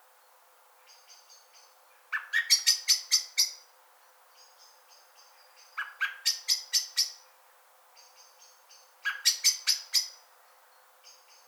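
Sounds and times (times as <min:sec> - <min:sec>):
common blackbird Turdus merula sharp clicking chink calls: 0:00.9 - 0:03.6, 0:04.4 - 0:07.2, 0:08.0 - 0:10.2.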